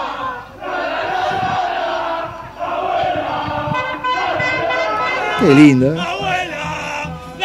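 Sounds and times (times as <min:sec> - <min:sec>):
large crowd chanting a football song in unison: 0:00.0 - 0:07.4
scattered horns tooting: 0:03.6 - 0:07.4
speech: 0:05.4 - 0:06.2.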